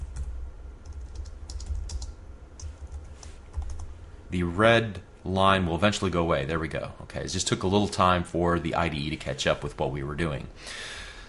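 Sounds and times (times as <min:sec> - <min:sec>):
typing on a computer keyboard while writing code: 0:00.0 - 0:03.9
speech: 0:04.3 - 0:11.0.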